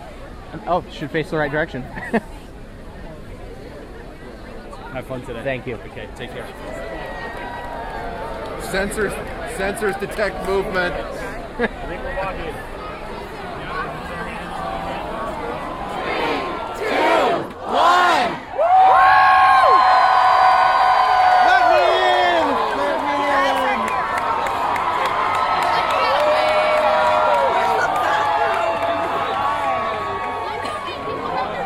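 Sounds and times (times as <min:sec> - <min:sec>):
speech: 0:00.5 - 0:02.3, 0:04.9 - 0:07.2, 0:08.7 - 0:12.8
large crowd yelling and cheering loudly: 0:06.4 - 0:31.6.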